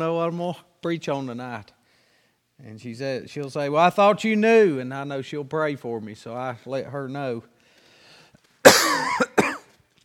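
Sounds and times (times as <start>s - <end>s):
speech: 0.0s - 1.8s, 2.6s - 7.5s
harsh raspy coughs: 8.6s - 9.8s.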